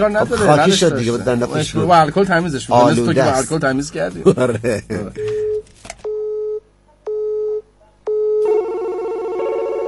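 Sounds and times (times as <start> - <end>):
speech: 0.0 - 5.3
telephone busy signal: 5.4 - 9.8.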